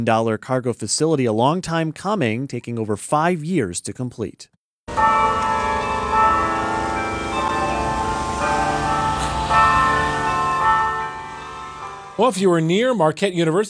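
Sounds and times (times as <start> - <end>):
speech: 0.0 - 5.2, 12.2 - 13.6
bell tower bells ringing a melody: 4.9 - 12.2.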